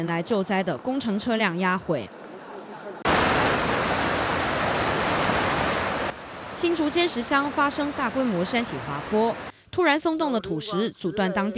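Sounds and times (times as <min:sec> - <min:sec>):
speech: 0:00.0 - 0:02.2, 0:06.6 - 0:11.5
strong typhoon wind gusts in Taiwan: 0:03.1 - 0:09.5.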